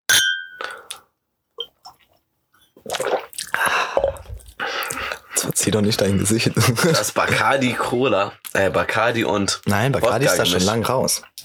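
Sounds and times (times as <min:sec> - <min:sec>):
glasses clinking in a toast: 0:00.1 - 0:01.0
liquid sloshing: 0:01.6 - 0:05.4
speech: 0:05.6 - 0:11.4.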